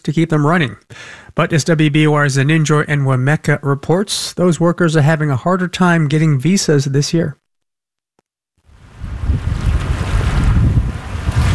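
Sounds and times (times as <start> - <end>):
speech: 0.0 - 7.4
breeze gusting across the microphone: 8.7 - 11.5
ocean surf washing against the shore: 8.7 - 11.5.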